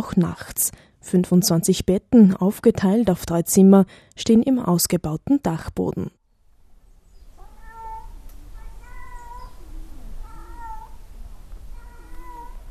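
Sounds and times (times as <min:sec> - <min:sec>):
speech: 0:00.0 - 0:06.2
cat meowing in the entrance area of a children's centre: 0:07.4 - 0:12.6.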